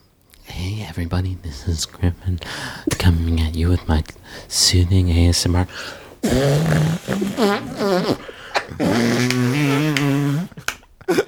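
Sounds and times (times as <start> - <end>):
speech: 0.6 - 11.2
wet buzzy armpit farts made by squeezing a hand against the armpit: 6.2 - 10.7.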